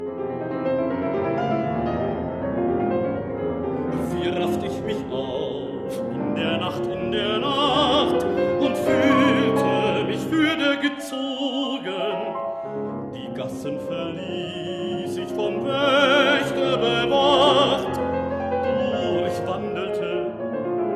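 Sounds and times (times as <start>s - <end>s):
piano accompaniment: 0.0s - 20.9s
baritone singing night songs: 3.9s - 20.5s.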